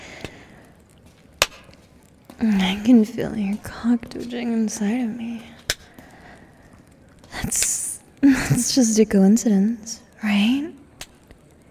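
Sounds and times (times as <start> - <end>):
sharp slap on skin: 1.4 - 1.8, 5.6 - 5.9
speech: 2.4 - 5.6, 7.4 - 7.6, 8.2 - 10.8.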